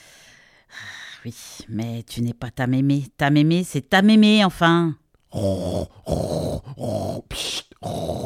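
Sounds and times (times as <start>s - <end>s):
speech: 1.2s - 8.2s
person fake snoring: 5.3s - 8.2s.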